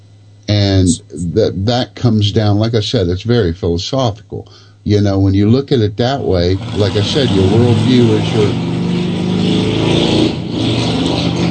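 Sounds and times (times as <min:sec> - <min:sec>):
speech: 0:00.8 - 0:08.7
loud motorcycle engine revving outside: 0:06.3 - 0:11.4.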